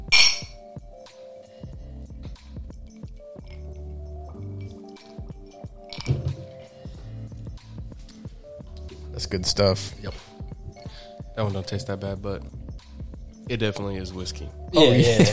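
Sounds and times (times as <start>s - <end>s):
glasses clinking in a toast: 0.0s - 0.6s, 5.9s - 6.6s
speech: 9.2s - 10.3s, 11.4s - 12.6s, 13.5s - 15.3s
laughter: 14.8s - 15.3s.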